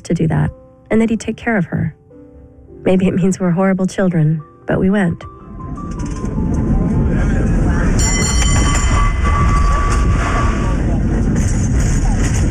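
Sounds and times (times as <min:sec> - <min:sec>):
speech: 0:00.1 - 0:02.0, 0:02.8 - 0:06.2
cable car rumbling and rattling along its rails: 0:05.8 - 0:12.4
shrill metallic cable car wheel squeal: 0:08.0 - 0:11.0.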